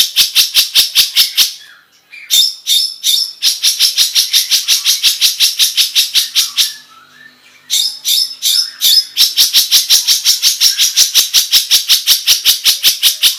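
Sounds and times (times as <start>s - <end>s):
long-tailed shrike singing: 0.0s - 13.3s.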